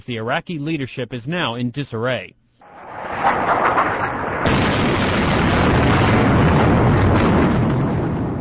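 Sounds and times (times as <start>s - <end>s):
speech: 0.1s - 2.4s, 3.3s - 3.8s
bomb explosions over Baghdad Iraq at night: 2.6s - 8.3s
sustained reverberating rumble of bombs over Baghdad: 2.6s - 8.3s.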